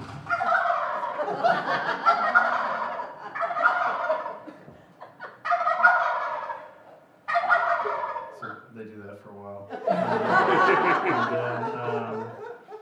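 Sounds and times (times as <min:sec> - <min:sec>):
wild turkeys gobbling: 0:00.2 - 0:04.5, 0:05.2 - 0:08.7
laughter: 0:01.0 - 0:05.5, 0:09.7 - 0:12.7.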